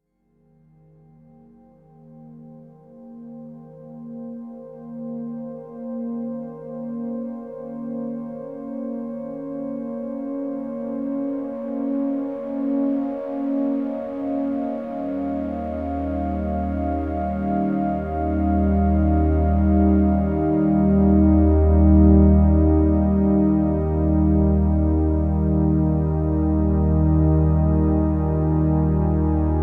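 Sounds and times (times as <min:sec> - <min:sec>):
slow music movement: 0:11.5 - 0:29.6.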